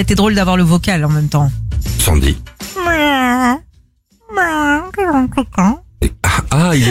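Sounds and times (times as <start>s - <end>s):
speech: 0.0s - 3.6s, 5.0s - 6.8s
person imitating an irritated cat meowing: 2.8s - 3.6s, 4.2s - 5.8s.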